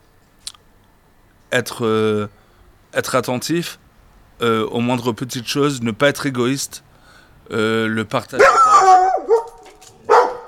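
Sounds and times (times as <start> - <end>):
speech: 1.5 - 3.8, 4.4 - 6.9, 7.5 - 8.6
dog barking: 8.4 - 10.4.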